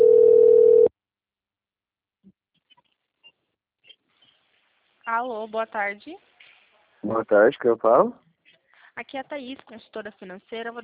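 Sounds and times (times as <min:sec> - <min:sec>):
telephone dial tone: 0:00.0 - 0:00.9
speech: 0:05.1 - 0:06.3, 0:07.0 - 0:08.3, 0:09.0 - 0:10.8.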